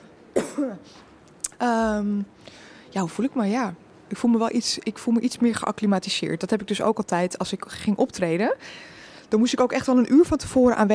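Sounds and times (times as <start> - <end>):
person coughing during an interview: 0.3 - 0.8
speech: 0.6 - 10.9.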